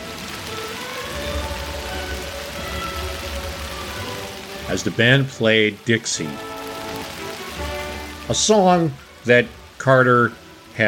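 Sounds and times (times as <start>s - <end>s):
steady rain pattering on umbrellas of a crowd in Plains Georgia: 0.0s - 10.8s
speech: 4.7s - 6.5s, 8.3s - 10.8s.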